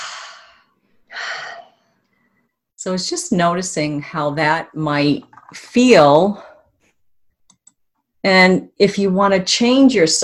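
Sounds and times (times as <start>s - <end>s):
deep cleansing breath inhale and exhale during an eye-massage relaxation exercise: 0.0s - 2.6s
speech: 2.8s - 6.5s, 8.2s - 10.2s.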